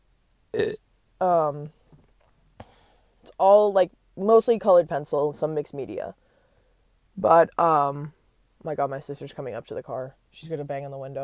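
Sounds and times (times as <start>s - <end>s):
person burping while sitting in a car: 0.6s - 0.8s
speech: 0.6s - 1.8s, 3.4s - 6.2s, 7.2s - 11.2s.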